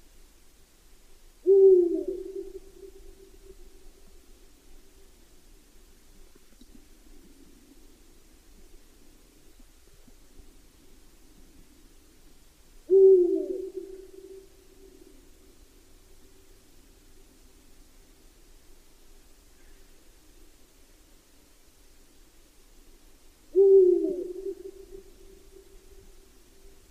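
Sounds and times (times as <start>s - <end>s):
outdoor hiss: 0.0s - 26.9s
owl hooting: 1.4s - 4.2s, 12.8s - 15.3s, 23.5s - 26.8s.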